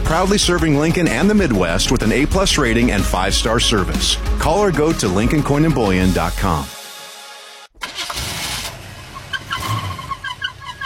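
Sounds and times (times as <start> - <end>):
speech: 0.1 - 6.8
car engine cranking and sputtering with rough rattle and whine: 7.8 - 10.8
irregular chirping squeaks over the running car engine: 9.3 - 10.8.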